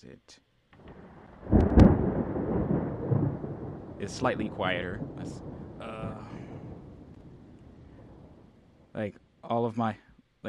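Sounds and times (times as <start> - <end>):
speech: 0.0 - 1.6, 4.0 - 5.5, 9.0 - 10.4
rolling rumble of thunder: 0.8 - 9.1
steady rain-like hiss: 0.8 - 10.4.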